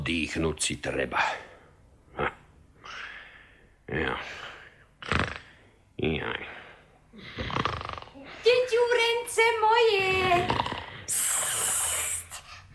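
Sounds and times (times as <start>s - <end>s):
speech: 0.0s - 1.5s, 3.9s - 4.5s, 6.0s - 6.6s, 8.5s - 10.6s
wolf snoring loudly: 7.2s - 8.2s, 10.0s - 11.2s.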